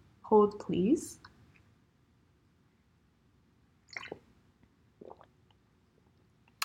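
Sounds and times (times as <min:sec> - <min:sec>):
speech: 0:00.3 - 0:01.3
sipping and swallowing a drink: 0:03.9 - 0:04.3, 0:04.9 - 0:06.6.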